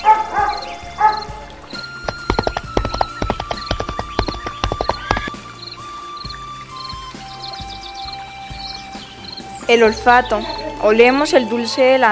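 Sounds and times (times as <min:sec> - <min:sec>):
horse galloping: 0:01.5 - 0:05.5
speech: 0:09.7 - 0:12.1.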